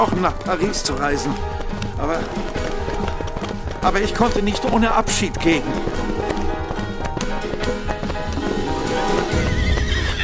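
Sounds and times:
speech: 0.0s - 2.8s, 3.8s - 6.4s
horses galloping head to head at full speed: 0.0s - 10.2s
horse whinnying: 8.3s - 10.2s.

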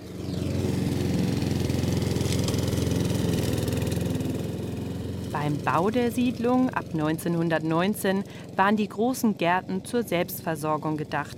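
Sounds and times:
small lawn mower engine running in a large garden plot: 0.0s - 11.3s
speech: 5.4s - 11.3s.

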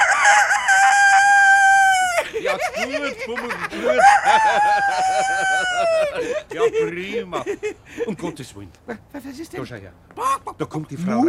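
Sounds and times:
person imitating a rooster crowing: 0.0s - 2.2s, 3.8s - 6.2s
laughter: 1.8s - 8.5s, 10.2s - 10.7s
speech: 3.0s - 11.2s.

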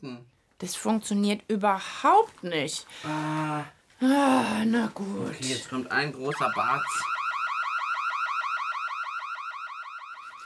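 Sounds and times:
speech: 0.0s - 7.2s
electronic alarm whooping with a rising-falling tone: 6.2s - 10.4s.

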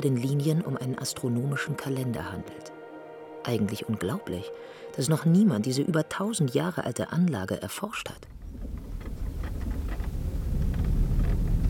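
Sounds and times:
speech: 0.0s - 2.8s, 3.4s - 8.6s
old bus engine rumbling on unpaved gravel roads from Lima Peru: 8.4s - 11.6s.

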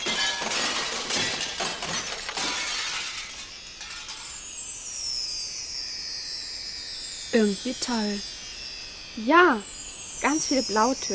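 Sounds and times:
window panes shattering: 0.0s - 4.4s
falling glass pieces tinkling: 0.0s - 5.2s
speech: 7.4s - 8.4s, 9.2s - 11.1s.

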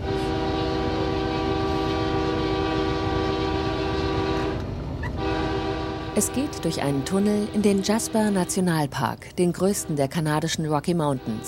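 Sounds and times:
train horn-like tone in the Canadian Rocky Mountains: 0.0s - 8.6s, 11.2s - 11.4s
train rumbling through the Canadian Rocky Mountains: 0.0s - 11.4s
speech: 6.2s - 11.4s.

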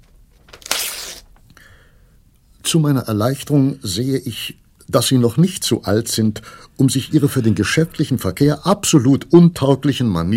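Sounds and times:
paper crinkling: 0.0s - 1.4s
paper contract being torn up: 0.5s - 1.3s
speech: 2.7s - 10.3s.

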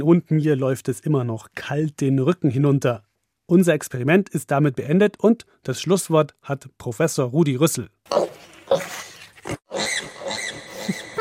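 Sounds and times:
speech: 0.0s - 8.8s
pig grunting and snorting: 8.1s - 11.2s.

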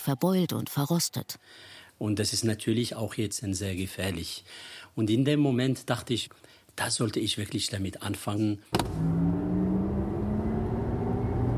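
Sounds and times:
speech: 0.0s - 9.5s
car driving along a road toward a small town near Rabat: 8.8s - 11.5s.

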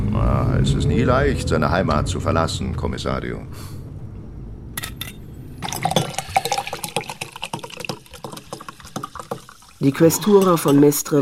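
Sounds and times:
speech: 0.6s - 3.8s, 9.8s - 11.2s
water pouring from mineral water bottles: 5.6s - 11.2s.

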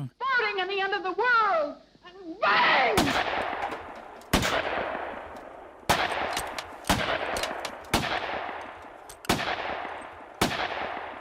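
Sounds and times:
speech: 0.0s - 3.5s
gunshots fired at a canvas: 3.0s - 11.1s.

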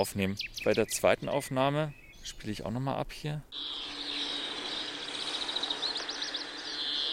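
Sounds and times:
speech: 0.0s - 3.9s
greenfinch calling with a buzzy wheeze and twittering notes: 0.4s - 2.5s, 3.5s - 7.1s
steady hissy background of a phone recording: 3.6s - 7.1s.

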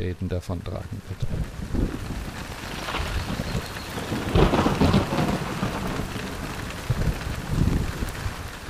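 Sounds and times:
speech: 0.0s - 2.1s
heavy rain pouring onto a children's playground: 0.0s - 8.6s
low rumbling thunder: 1.2s - 8.6s.

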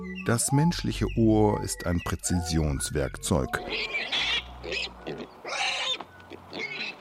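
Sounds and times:
speech: 0.3s - 4.3s
piglets squealing: 3.5s - 6.9s.

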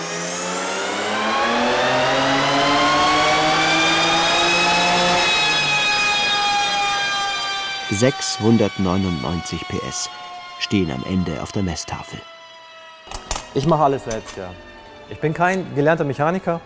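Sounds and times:
tuned BMW 3 Series engine revving on a dynamometer: 0.0s - 12.2s
speech: 8.0s - 12.3s, 13.5s - 16.6s.

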